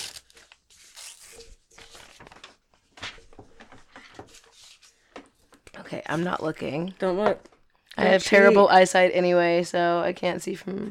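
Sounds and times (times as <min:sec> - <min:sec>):
paper being torn: 0:00.0 - 0:02.4
speech: 0:05.9 - 0:10.8.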